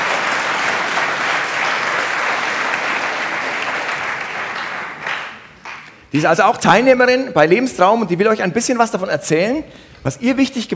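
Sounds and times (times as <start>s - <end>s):
crowd clapping: 0.0s - 6.3s
speech: 6.1s - 10.7s.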